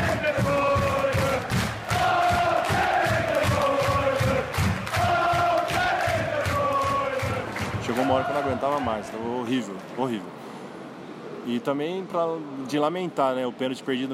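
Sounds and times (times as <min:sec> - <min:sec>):
fans rhythmic stamping or clapping: 0:00.0 - 0:09.1
football stadium fans chanting a player's song: 0:00.0 - 0:09.1
speech: 0:08.1 - 0:10.4, 0:11.4 - 0:14.1.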